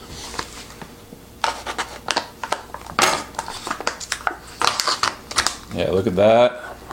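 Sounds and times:
plastic packaging crinkling: 1.5s - 6.0s
blade cutting stuck plastic packaging on a ready-to-serve food cup: 1.8s - 5.6s
speech: 5.8s - 6.6s.

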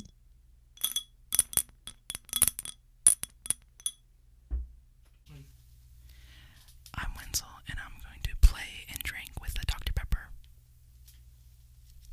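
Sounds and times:
glass Ramune soda bottle clinking and tapping: 0.8s - 4.0s
soft whispering: 6.9s - 10.4s.

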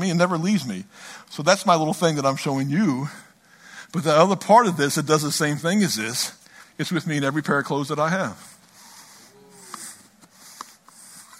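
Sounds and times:
speech: 0.0s - 3.3s, 3.9s - 8.6s
person blowing nose into a handkerchief: 8.8s - 11.3s.

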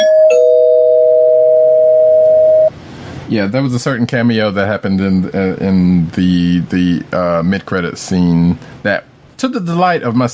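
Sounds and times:
doorbell-style spoiler warning bell two-tone ding-dong: 0.0s - 2.7s
speech: 3.3s - 10.3s.

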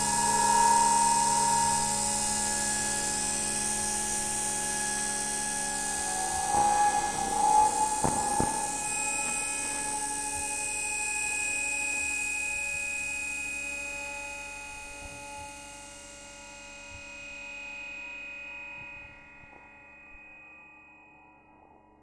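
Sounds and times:
bright hiss: 0.0s - 11.4s
electromagnetic signals from underground train lines humming: 0.0s - 12.1s
layered whines and buzzing tones: 0.0s - 13.6s.

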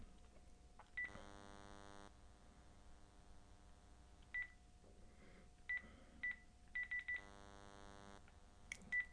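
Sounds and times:
low steady hum: 0.0s - 9.1s
longer buzzy tones on a landline phone: 1.0s - 2.1s, 7.0s - 8.2s.

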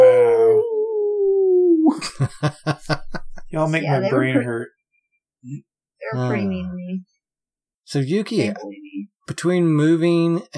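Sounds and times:
person imitating a beagle's howl: 0.0s - 2.0s
laughter: 1.9s - 4.7s
speech: 2.2s - 4.8s, 5.4s - 7.1s, 7.9s - 10.5s.

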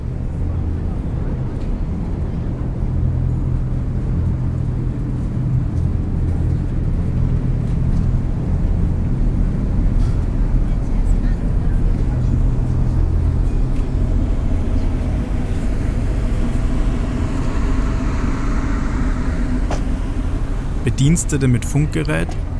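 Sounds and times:
harbour ferry engine rumbling while docking at landing pier: 0.0s - 22.5s
harbour noise: 0.0s - 22.5s
speech: 21.0s - 22.5s.

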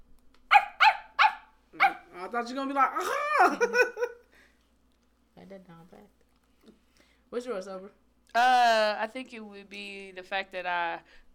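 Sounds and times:
person imitating a dog barking: 0.5s - 2.3s
speech: 2.2s - 4.2s, 5.5s - 11.3s.

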